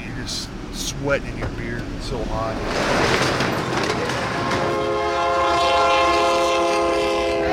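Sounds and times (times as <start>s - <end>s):
roar of train wheels on the track: 0.0s - 7.5s
train rumbling past: 0.0s - 7.5s
speech: 0.2s - 3.8s
train horn blast: 4.2s - 7.5s.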